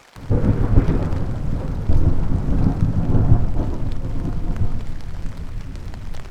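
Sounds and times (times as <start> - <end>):
falling rain: 0.0 - 6.2
deep rolling thunder: 0.2 - 6.2.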